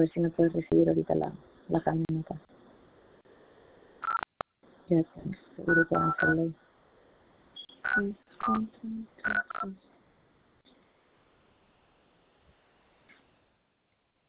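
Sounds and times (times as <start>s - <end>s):
speech: 0.0s - 2.6s, 4.9s - 6.6s, 7.8s - 9.9s
telephone keypad dialing tones: 5.7s - 6.4s.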